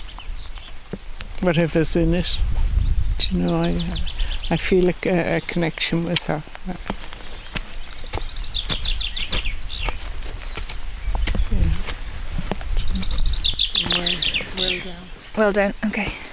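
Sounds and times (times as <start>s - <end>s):
bright rapid bird song trills: 0.0s - 6.0s, 7.2s - 11.7s, 12.6s - 16.0s
steady outdoor noise: 0.0s - 16.3s
speech: 0.9s - 2.6s, 3.2s - 7.0s, 15.4s - 16.2s.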